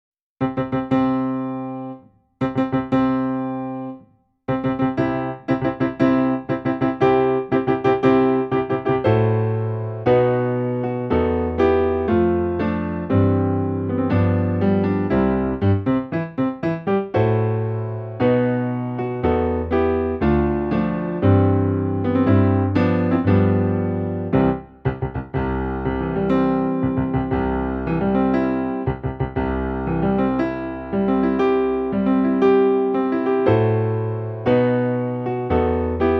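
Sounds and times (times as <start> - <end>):
wedding music on piano: 0.4 - 36.1.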